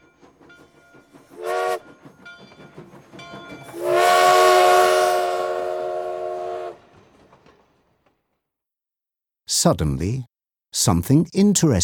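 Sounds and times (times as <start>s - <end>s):
approaching train sounding its whistle: 1.4s - 1.8s, 3.7s - 6.8s
speech: 9.6s - 11.8s.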